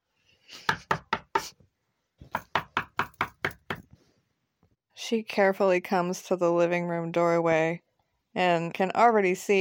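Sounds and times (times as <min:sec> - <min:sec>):
knocking on a back door: 0:02.2 - 0:03.8
speech: 0:05.1 - 0:07.8, 0:08.4 - 0:09.5.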